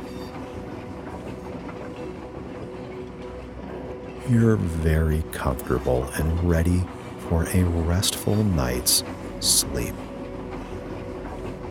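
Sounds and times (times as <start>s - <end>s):
train rolling on rails heard from inside a carriage: 0.0s - 11.6s
speech: 4.3s - 10.1s.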